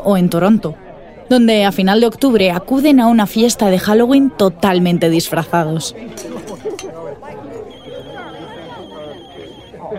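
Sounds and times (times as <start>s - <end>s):
speech: 0.0s - 7.4s
noisy party crowd chatting and laughing: 0.0s - 9.9s
telephone ringing with a high electronic tone: 6.1s - 9.7s.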